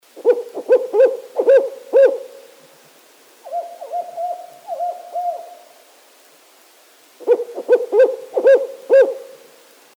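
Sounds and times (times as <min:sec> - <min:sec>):
Strix fulvescens calling: 0:00.2 - 0:02.6, 0:03.4 - 0:05.8, 0:07.2 - 0:09.5.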